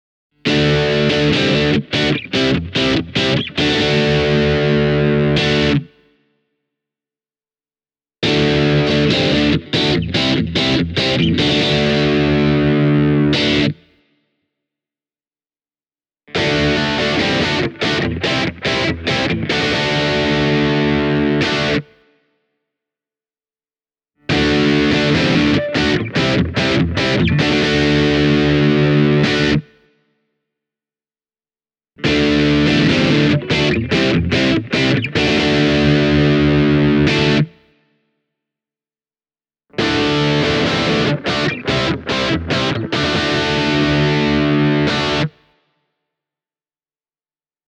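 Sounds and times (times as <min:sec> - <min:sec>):
distorted electric guitar: 0:00.5 - 0:06.0, 0:08.2 - 0:13.8, 0:16.3 - 0:21.9, 0:24.3 - 0:29.8, 0:32.0 - 0:37.6, 0:39.8 - 0:45.4.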